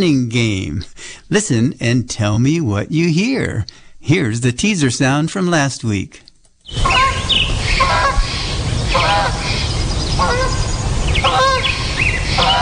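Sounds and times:
speech: 0:00.0 - 0:08.3, 0:08.9 - 0:10.6
steady background hiss: 0:00.0 - 0:12.6
other birds in background: 0:03.1 - 0:04.0, 0:06.2 - 0:12.6
goose honking while flying overhead in the morning: 0:06.8 - 0:12.6.

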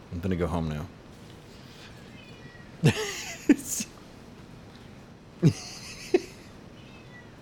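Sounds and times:
speech: 0:00.1 - 0:01.0, 0:02.8 - 0:03.1, 0:05.4 - 0:05.7
cat meowing: 0:01.9 - 0:02.9, 0:06.4 - 0:07.3
laughter: 0:02.8 - 0:03.9, 0:05.4 - 0:06.5.

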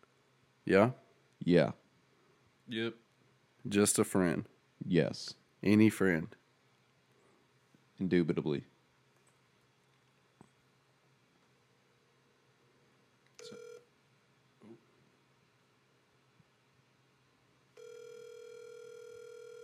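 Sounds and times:
faint hiss: 0:00.0 - 0:19.6
speech: 0:00.7 - 0:01.8, 0:02.7 - 0:03.0, 0:03.6 - 0:06.4, 0:08.0 - 0:08.7
outgoing phone call ringback tone: 0:13.4 - 0:13.9, 0:17.8 - 0:19.6.

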